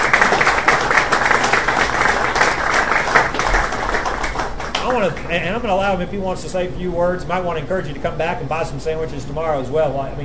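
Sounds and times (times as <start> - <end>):
crowd applauding with dense overlapping clapping: 0.0 - 5.4
speech: 5.0 - 10.2.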